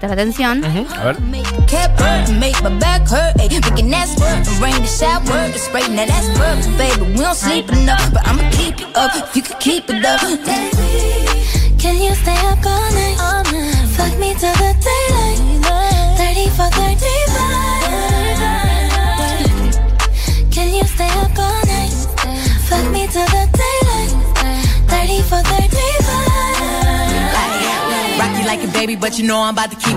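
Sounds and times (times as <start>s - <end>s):
heavy thumping bass line in a pop remix: 0.0s - 5.5s, 6.1s - 8.8s, 10.8s - 27.4s
speech: 0.0s - 15.2s, 28.8s - 29.9s
sung vocals in a pop remix: 0.0s - 29.9s.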